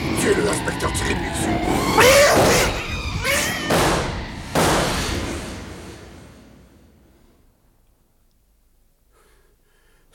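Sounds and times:
loud crashing bursts: 0.0 - 7.5
speech: 0.2 - 2.1
cat yowling wildly: 1.6 - 4.4.

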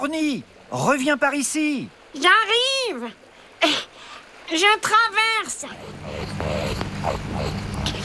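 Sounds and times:
speech: 0.0 - 3.9, 4.5 - 7.6
rakali Australian water rat growling: 5.5 - 8.0.

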